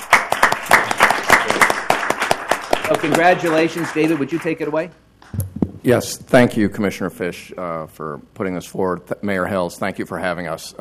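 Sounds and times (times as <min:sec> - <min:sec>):
audience applauding students at a city council meeting: 0:00.0 - 0:04.9
speech: 0:03.0 - 0:05.0, 0:05.8 - 0:10.7.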